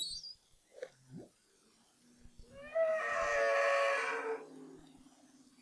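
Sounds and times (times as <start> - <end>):
humpback whale broad harmonic wail: 2.6 - 4.6.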